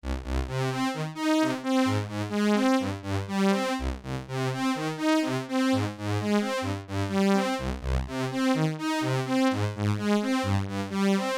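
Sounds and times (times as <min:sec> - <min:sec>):
Oberheim OB-Xa synthesizer: 0:00.1 - 0:11.3.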